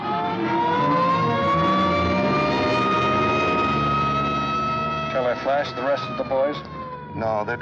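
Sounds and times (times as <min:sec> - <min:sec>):
ambulance engine rumbling as it pulls out: 0:00.0 - 0:07.6
ambulance siren wailing: 0:00.0 - 0:07.6
speech: 0:05.6 - 0:07.6.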